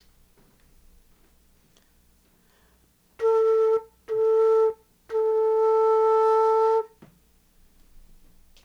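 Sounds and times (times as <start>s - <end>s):
low mid-ranged tone played on a baroque flute: 3.2s - 7.0s.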